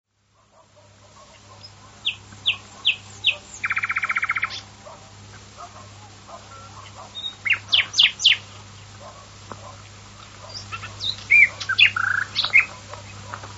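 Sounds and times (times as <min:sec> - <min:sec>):
common nightingale singing: 0:01.5 - 0:04.7, 0:06.4 - 0:08.5, 0:10.4 - 0:12.8.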